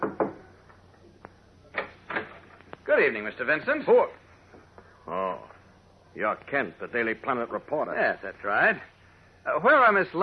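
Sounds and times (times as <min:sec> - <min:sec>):
dull knocks on the wooden door of a ground-floor tenement apartment: 0:00.0 - 0:00.4
faint room hum: 0:00.0 - 0:10.2
speech: 0:03.0 - 0:04.2, 0:06.2 - 0:10.2.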